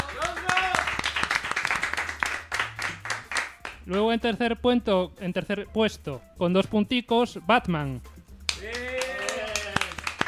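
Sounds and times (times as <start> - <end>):
small group clapping at a contest: 0.0 - 4.0, 8.4 - 10.2
speech: 3.9 - 8.7.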